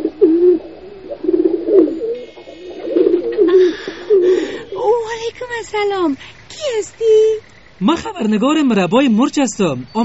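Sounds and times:
white pigeon cooing: 0.0s - 5.4s
higher chirps: 0.0s - 10.0s
speech: 5.6s - 10.0s.

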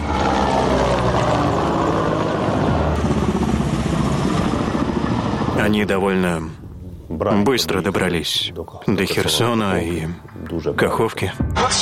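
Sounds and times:
military aircraft engine roaring overhead: 0.0s - 7.1s
speech: 5.7s - 11.8s.

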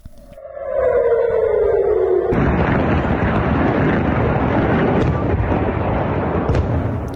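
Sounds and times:
falling whistle-like tone of a missile fired from Gaza: 0.3s - 2.4s
missile exploding around Ben Gurion Airport in Tel Aviv, Israel: 0.6s - 7.1s.

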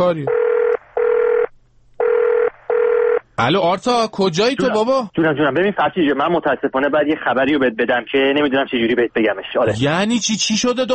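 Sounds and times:
speech: 0.0s - 0.4s, 3.4s - 10.9s
ringback tone of a phone call being placed: 0.3s - 3.2s.

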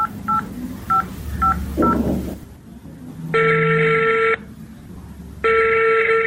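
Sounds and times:
long loud phone ringing tones: 0.0s - 2.0s, 3.4s - 4.4s, 5.4s - 6.2s
mobile phone keypad beeps: 0.0s - 2.0s.

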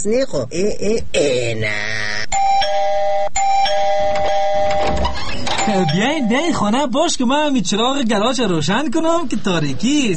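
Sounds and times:
speech: 0.0s - 2.1s, 5.8s - 10.1s
house doorbell chiming at night: 2.4s - 6.6s.

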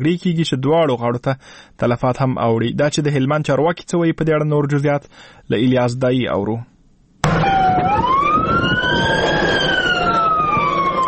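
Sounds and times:
speech: 0.0s - 6.7s
ambulance siren on the way to a hospital emergency ward in Lashkar Gah, Afghanistan: 7.2s - 11.0s.

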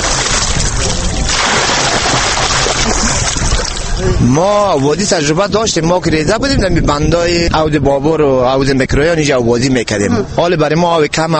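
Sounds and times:
water splashing and sloshing from people swimming in a reservoir: 0.0s - 5.2s
speech: 4.2s - 11.3s.

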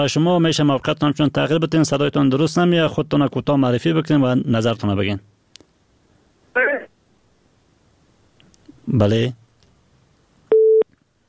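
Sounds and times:
speech: 0.0s - 5.3s, 8.9s - 9.4s
busy-tone beep after a dropped phone call: 10.5s - 10.8s.

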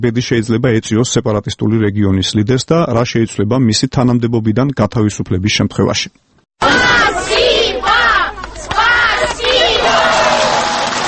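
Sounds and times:
speech: 0.0s - 6.8s
crowd of residents shouting in chant-like bursts in greeting: 6.6s - 11.0s
crowd applauding in greeting: 8.4s - 11.0s.

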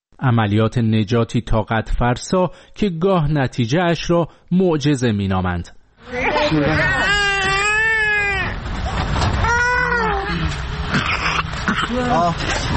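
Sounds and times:
speech: 0.2s - 7.3s, 11.9s - 12.7s
newborn baby crying: 6.2s - 8.6s, 9.4s - 11.5s.

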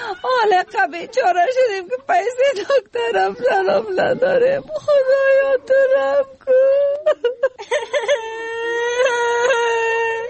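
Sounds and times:
speech: 0.0s - 8.4s
child crying with sobs and wail: 3.0s - 10.2s.

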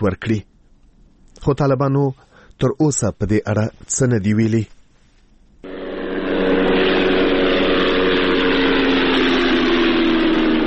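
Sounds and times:
speech: 0.0s - 0.5s, 1.4s - 4.8s
unmanned drone aircraft flying over Ghazni province: 5.6s - 10.6s.

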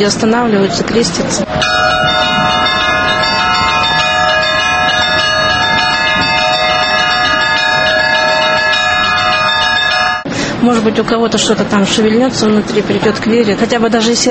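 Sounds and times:
speech: 0.0s - 1.9s, 10.6s - 14.2s
church bells ringing: 1.4s - 10.3s.

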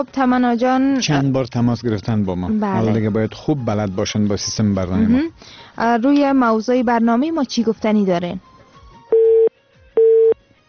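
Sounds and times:
speech: 0.0s - 8.5s
telephone busy tone after a dropped call: 9.1s - 10.4s.

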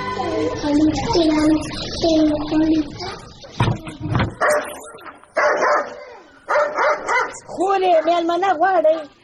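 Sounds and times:
people talking: 0.1s - 6.3s, 7.2s - 9.2s
dog barking: 4.3s - 8.2s.

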